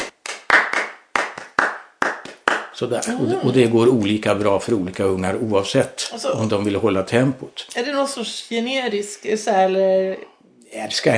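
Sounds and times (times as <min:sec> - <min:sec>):
sharp hand claps demonstrating an uneven rhythm: 0:00.0 - 0:03.2
speech: 0:02.8 - 0:11.1.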